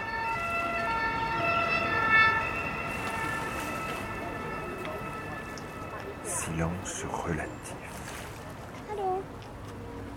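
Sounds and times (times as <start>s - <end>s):
emergency siren wailing: 0.0s - 7.8s
speech: 6.5s - 8.0s.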